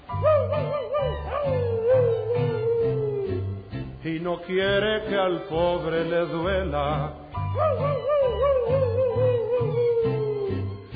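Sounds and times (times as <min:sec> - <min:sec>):
dog howling: 0:00.2 - 0:03.5, 0:07.6 - 0:10.6
speech: 0:04.2 - 0:08.8.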